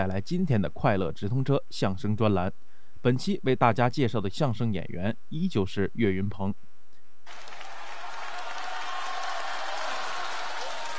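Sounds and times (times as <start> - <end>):
speech: 0.0 - 6.7
large audience applause at a crosstalk comedy show: 7.3 - 10.9.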